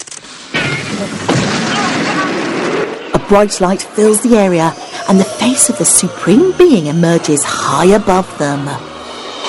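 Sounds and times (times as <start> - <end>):
explosions: 0.5 - 3.1
speech: 3.3 - 8.9.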